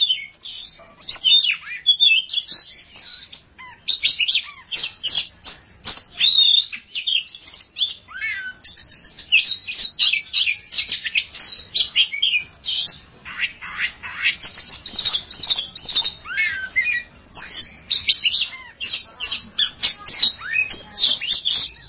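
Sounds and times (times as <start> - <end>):
Oriental magpie-robin song: 0.0 - 21.8.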